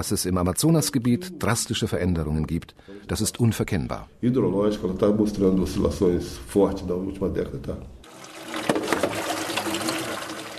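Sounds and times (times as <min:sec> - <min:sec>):
speech: 0:00.0 - 0:08.0
stream of running water gushing and splashing while fish are cleaned: 0:08.1 - 0:10.5.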